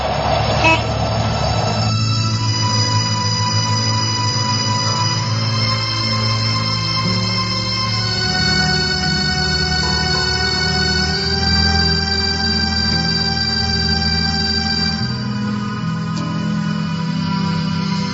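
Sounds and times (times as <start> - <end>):
angkot minibus engine starting and running: 0.0 - 18.1.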